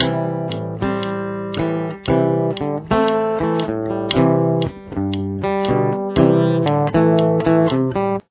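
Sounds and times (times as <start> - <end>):
main verse riff: 0.0 - 8.2.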